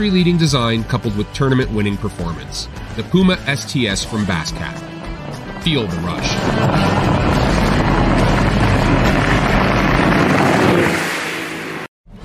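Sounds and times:
speech: 0.0s - 4.9s, 5.6s - 7.2s
bass boat with 250 or 300 horsepower engine roaring: 5.8s - 11.9s.

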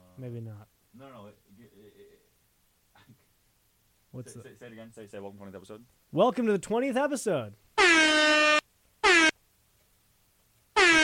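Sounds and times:
speech: 0.2s - 2.3s, 4.1s - 8.6s
air horn sound effect blasts: 7.8s - 9.3s, 10.8s - 11.0s.

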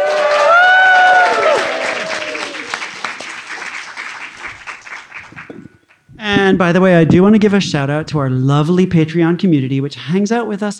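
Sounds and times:
high whoops and shouts from a live audience: 0.0s - 2.8s
live audience at a Worldcon convention clapping and cheering: 0.0s - 6.1s
speech: 6.5s - 10.7s.

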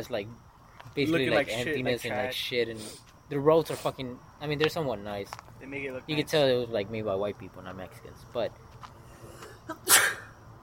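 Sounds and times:
speech: 0.0s - 8.7s
faint hum: 0.0s - 10.6s
sneeze: 9.4s - 10.3s.

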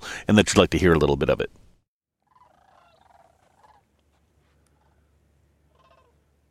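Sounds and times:
speech: 0.3s - 1.6s
flock of migrating sandhill cranes calling while circling overhead: 2.2s - 6.4s
low steady background hum: 2.6s - 6.4s.

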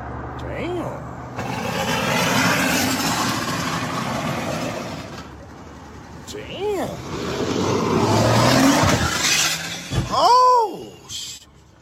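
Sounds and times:
car engine roaring: 0.0s - 11.8s
road noise: 0.0s - 11.8s
sharp rising screech: 1.4s - 5.2s, 7.1s - 10.2s
heavy impact of several cars crashing: 1.4s - 5.3s, 8.4s - 10.2s.

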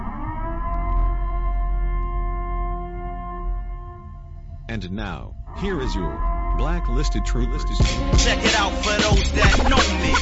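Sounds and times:
civil defense siren wailing: 0.0s - 4.4s, 5.5s - 7.7s
low rumbling background: 0.0s - 8.6s
speech: 4.7s - 10.2s.

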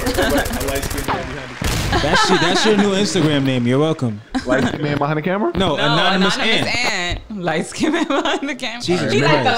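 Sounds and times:
laughter: 0.0s - 9.5s
speech: 0.2s - 9.5s
gunshot sound effects: 0.6s - 2.1s.

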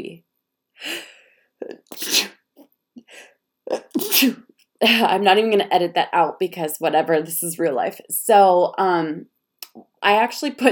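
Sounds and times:
speech: 0.8s - 1.1s, 4.2s - 10.7s
person sneezing: 1.7s - 2.4s, 3.7s - 4.5s.

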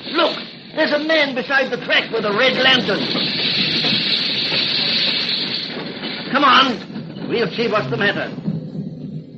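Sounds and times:
steam train hissing while slowing to a stop: 0.0s - 8.4s
speech: 0.8s - 3.5s, 6.3s - 8.4s
faint low rumble of a steam train: 6.9s - 9.3s.

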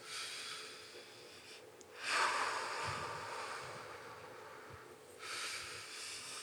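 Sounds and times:
deep breathing in and out: 0.0s - 6.4s.

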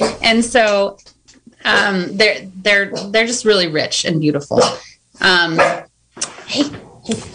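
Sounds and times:
speech: 0.0s - 5.9s, 6.5s - 7.3s
therapy dog barking in an office: 4.6s - 4.9s, 5.6s - 5.9s.

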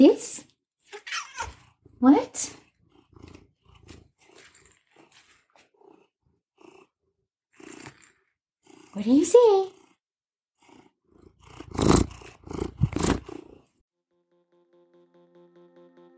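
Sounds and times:
speech: 0.0s - 0.3s, 2.0s - 2.6s, 9.3s - 9.8s
cat rising cry: 1.0s - 1.7s
cat purring softly: 1.5s - 13.8s.

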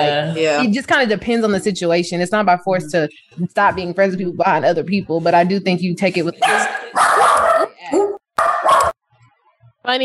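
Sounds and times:
speech: 0.0s - 7.1s, 9.8s - 10.0s
dog barking: 6.4s - 9.0s.

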